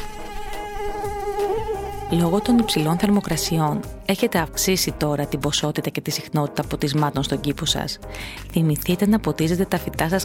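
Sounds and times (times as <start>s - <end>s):
mosquito high-pitched whine: 0.0s - 4.1s
speech: 2.1s - 10.2s.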